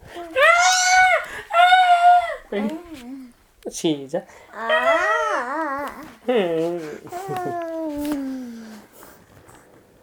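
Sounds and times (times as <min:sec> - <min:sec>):
children screaming as if fleeing in terror: 0:00.4 - 0:02.4
speech: 0:02.5 - 0:04.7, 0:06.3 - 0:07.6.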